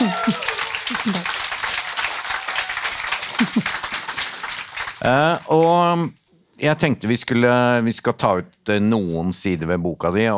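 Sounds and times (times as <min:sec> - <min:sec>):
laughter: 0:00.0 - 0:01.6, 0:03.3 - 0:04.0
small group applauding: 0:00.0 - 0:06.0
speech: 0:05.0 - 0:10.3.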